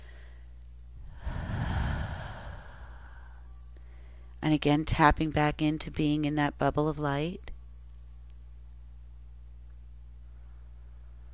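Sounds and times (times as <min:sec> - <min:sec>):
deep breath in during a guided relaxation: 0:01.1 - 0:04.3
speech: 0:04.4 - 0:07.5.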